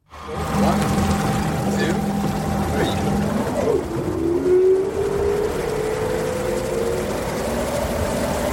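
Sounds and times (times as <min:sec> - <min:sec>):
continuous rushing water under an electric hydrofoil ferry: 0:00.0 - 0:08.5
electric hydrofoil ferry motor whine and hum: 0:00.0 - 0:08.5.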